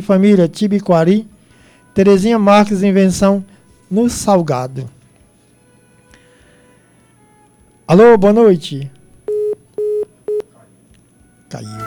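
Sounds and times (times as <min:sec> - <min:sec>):
speech: 0:00.0 - 0:01.3, 0:02.0 - 0:05.0, 0:07.9 - 0:09.0, 0:11.5 - 0:11.8
phone line busy signal beeps after a dropped call: 0:09.3 - 0:10.5.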